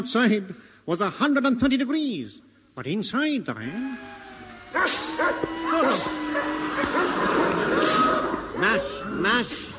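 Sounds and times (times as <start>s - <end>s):
speech: 0.0s - 6.2s, 8.6s - 9.7s
pack of sled dogs barking and yipping excitedly: 4.1s - 9.7s.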